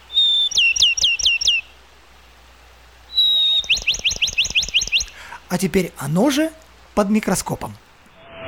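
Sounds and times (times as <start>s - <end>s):
sparrow chirping: 0.0s - 1.7s, 3.1s - 5.2s
speech: 5.5s - 7.8s.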